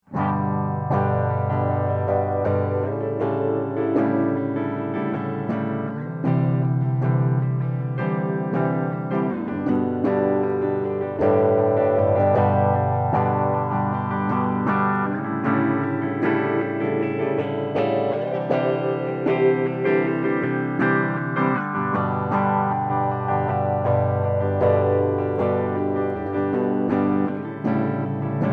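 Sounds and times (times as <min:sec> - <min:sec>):
guitar through a phase shifter at three quarter depth and half feedback: 0:00.0 - 0:28.5.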